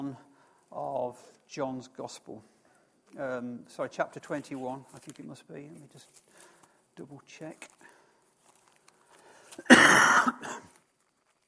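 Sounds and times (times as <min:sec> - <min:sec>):
speech: 0:00.1 - 0:07.9
harsh cough with rasping throat sound: 0:09.6 - 0:10.7.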